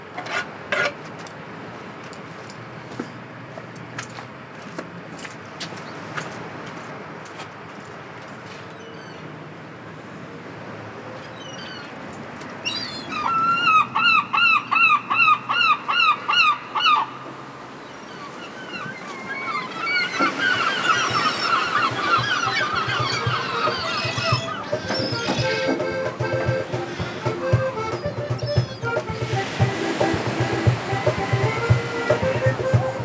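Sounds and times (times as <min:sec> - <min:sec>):
outdoor noise: 0:00.0 - 0:33.0
seagulls calling: 0:12.6 - 0:33.0.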